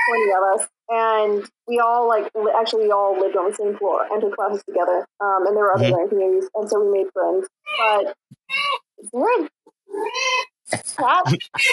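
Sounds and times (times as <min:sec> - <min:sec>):
cat meowing: 0:00.0 - 0:00.3, 0:07.7 - 0:08.8, 0:09.9 - 0:10.5
speech: 0:00.1 - 0:11.7.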